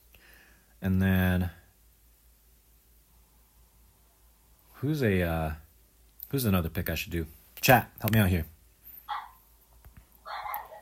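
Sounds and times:
speech: 0.8 - 1.6, 4.8 - 5.6, 6.3 - 8.6
dog barking excitedly: 9.1 - 9.4.

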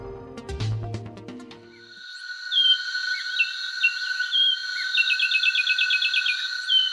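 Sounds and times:
steady insect-like drone: 1.8 - 6.9
finch singing in short chirps and a trill: 2.5 - 6.9.

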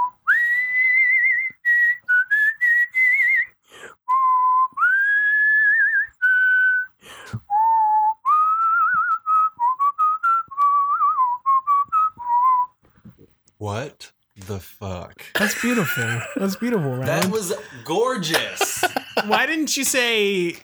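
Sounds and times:
person whistling a slow sustained melody: 0.0 - 12.7
laughter: 15.2 - 20.6
speech: 15.6 - 20.6.

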